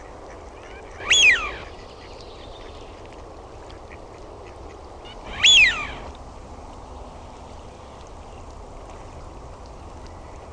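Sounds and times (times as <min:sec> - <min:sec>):
faint steady background noise: 0:00.0 - 0:10.5
Eurasian wigeon whistled call: 0:00.9 - 0:01.7, 0:05.3 - 0:06.1.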